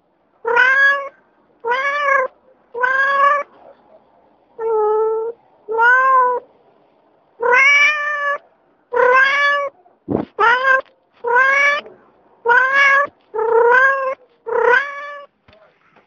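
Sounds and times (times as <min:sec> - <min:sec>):
cat meowing: 0:00.4 - 0:03.5, 0:04.6 - 0:06.4, 0:07.4 - 0:15.3.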